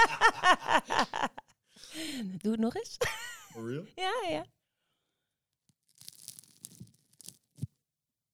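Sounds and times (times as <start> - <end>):
laughter: 0.0 - 1.4, 3.0 - 4.4
speech: 2.4 - 4.6
crusty sourdough bread being broken apart by hand: 5.7 - 7.7.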